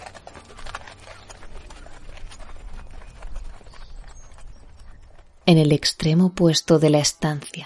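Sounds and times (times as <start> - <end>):
horse hooves clip-clopping on a curved sloping ramp: 0.0 - 6.2
speech: 5.5 - 7.6.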